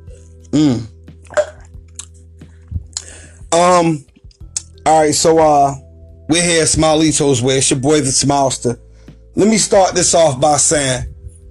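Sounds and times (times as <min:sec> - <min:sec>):
speech: 0:00.5 - 0:00.9, 0:03.6 - 0:04.1, 0:04.8 - 0:08.8, 0:09.4 - 0:11.1
person gulping water with mouth clicks: 0:00.5 - 0:02.2
loud breathy voiced exhales: 0:02.4 - 0:03.5.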